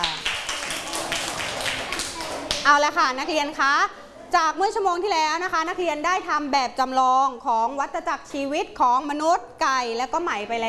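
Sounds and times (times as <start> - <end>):
classroom children clapping for a classmate: 0.0 - 2.7
speech: 2.6 - 10.6.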